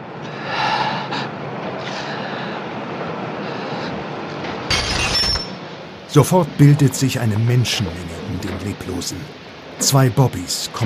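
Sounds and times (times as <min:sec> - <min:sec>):
drinking glass crashing and shattering: 0:04.7 - 0:05.6
speech: 0:06.1 - 0:10.8.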